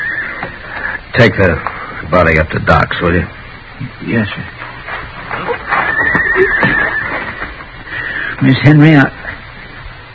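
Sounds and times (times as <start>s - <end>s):
horse whinnying: 0.0s - 0.6s, 5.3s - 7.7s
noisy outdoor background: 0.0s - 10.1s
speech: 1.2s - 4.6s, 8.4s - 9.2s.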